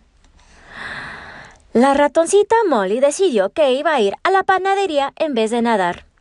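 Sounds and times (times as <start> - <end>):
deep breath in and out: 0.4 - 1.7
speech: 1.7 - 6.0.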